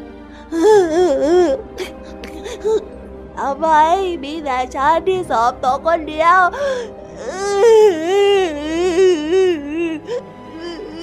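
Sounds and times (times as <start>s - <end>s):
speech: 0.4s - 1.9s, 2.6s - 10.3s
voice acting out a rabbit crying: 0.5s - 2.9s, 6.5s - 11.0s.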